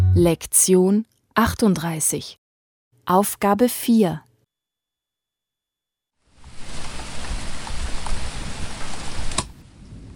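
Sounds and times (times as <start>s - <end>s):
speech: 0.2s - 2.4s, 3.1s - 4.3s
rain pouring outside: 6.3s - 10.1s.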